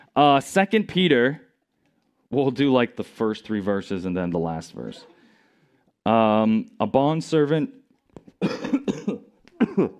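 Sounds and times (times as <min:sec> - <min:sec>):
speech: 0:00.2 - 0:01.4, 0:02.3 - 0:05.1, 0:06.0 - 0:09.1
person coughing in a church service: 0:08.4 - 0:09.9.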